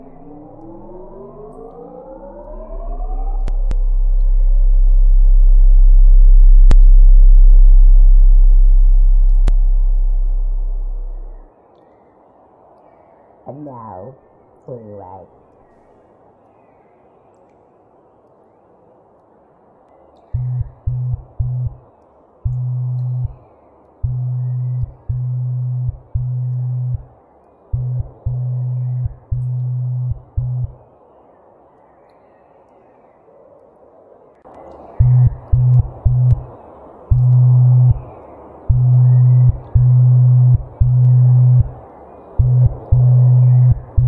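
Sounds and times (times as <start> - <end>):
low 33-hertz tone pulsing in a Morse-like pattern: 0.0 - 11.5, 20.4 - 21.8, 22.4 - 23.4, 24.0 - 27.1, 27.7 - 30.8, 34.8 - 44.0
faint hiss: 0.0 - 44.0.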